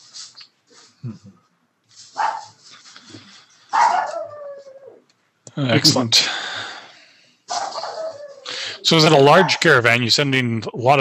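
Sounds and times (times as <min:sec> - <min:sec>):
steady hiss: 0:00.0 - 0:10.9
speech: 0:01.0 - 0:01.5, 0:05.6 - 0:06.5, 0:08.9 - 0:10.9
dog barking with short sharp barks and higher yips: 0:02.1 - 0:02.6, 0:03.7 - 0:04.4, 0:07.5 - 0:08.4, 0:09.3 - 0:09.6.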